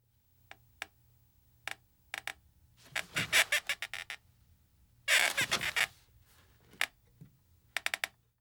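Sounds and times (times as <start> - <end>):
chair squeaking: 2.9 - 3.9, 5.1 - 6.0.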